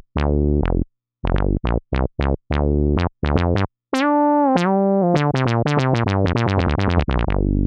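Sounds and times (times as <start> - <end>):
juicy funk music: 0.2 - 7.6.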